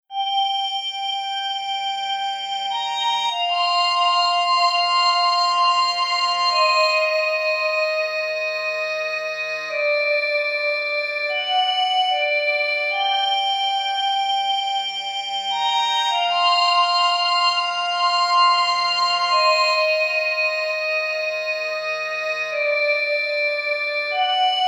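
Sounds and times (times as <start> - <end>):
glass organ with delay effect: 0.1 - 24.6.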